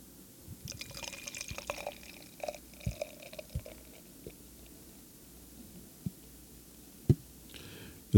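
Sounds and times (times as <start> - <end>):
foamy drink poured into a glass: 0.7 - 4.4
small drips and clicks: 0.7 - 4.4.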